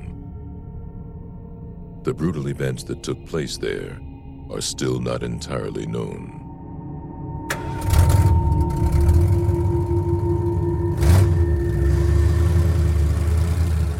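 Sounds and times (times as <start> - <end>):
speech: 2.0 - 6.4
vehicle engine hum driving slowly along a street: 7.5 - 13.9.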